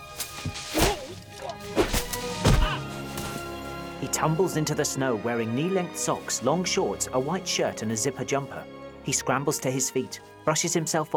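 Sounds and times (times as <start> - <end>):
pine branches whacking against a person pushing through them: 0.0 - 3.9
speech: 4.1 - 11.1.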